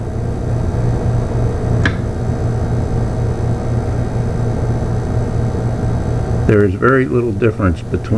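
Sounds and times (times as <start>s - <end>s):
refrigerator compressor motor humming on pure sine wave inverter power: 0.0s - 8.1s
brief sharp click: 1.8s - 2.1s
speech: 6.5s - 8.1s.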